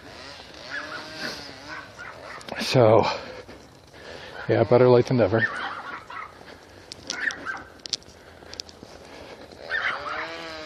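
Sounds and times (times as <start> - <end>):
outdoor hiss: 0.0 - 10.6
dogs yelping: 0.2 - 2.6, 4.2 - 8.0, 9.5 - 10.6
dogs barking: 0.6 - 2.6, 5.2 - 7.8, 9.6 - 10.5
speech: 2.6 - 3.3, 4.5 - 5.6.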